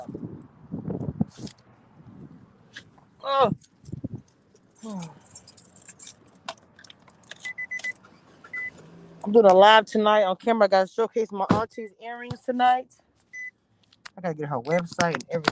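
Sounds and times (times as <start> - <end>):
speech: 3.3 - 3.7, 9.3 - 13.0, 14.2 - 15.5
keys jangling: 4.6 - 8.0.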